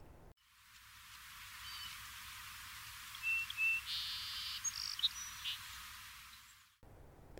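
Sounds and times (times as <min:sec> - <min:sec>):
steady hiss: 0:00.2 - 0:06.8
song sparrow song: 0:01.5 - 0:02.3, 0:03.0 - 0:06.8.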